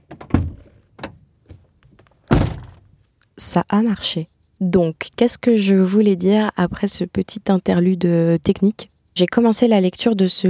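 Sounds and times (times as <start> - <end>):
van door slamming shut: 0.0 - 1.2, 2.3 - 2.9
van door opening with clunks and rattles: 0.0 - 1.6, 2.2 - 2.9
speech: 3.6 - 10.4.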